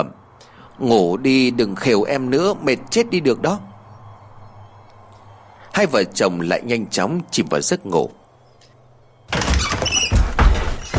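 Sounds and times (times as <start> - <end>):
speech: 0.8 - 3.7, 5.8 - 8.2
knocks: 9.3 - 10.9
window frame squealing and creaking as it swings: 9.3 - 10.9.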